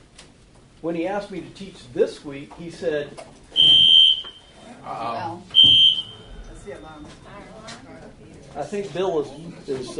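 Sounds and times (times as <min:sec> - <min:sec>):
speech: 0:00.8 - 0:03.8, 0:04.9 - 0:05.9, 0:06.6 - 0:09.9
electronic alarm buzzer beeping: 0:03.6 - 0:04.6, 0:05.5 - 0:06.5.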